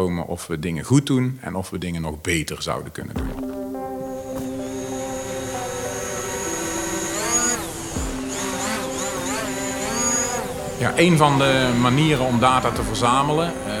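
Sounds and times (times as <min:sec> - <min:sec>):
speech: 0:00.0 - 0:03.4, 0:10.8 - 0:13.7
camera drone for precision farming crop data hovering: 0:03.2 - 0:13.7.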